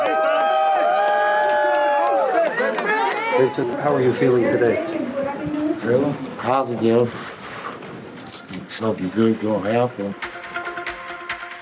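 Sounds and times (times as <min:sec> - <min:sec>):
group of supporters cheering and calling out: 0:00.0 - 0:06.5
speech: 0:03.4 - 0:07.3, 0:08.6 - 0:10.3.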